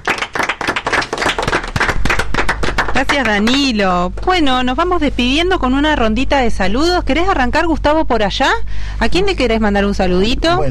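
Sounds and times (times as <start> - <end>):
group of people applauding: 0.0 - 3.7
speech: 3.0 - 10.6.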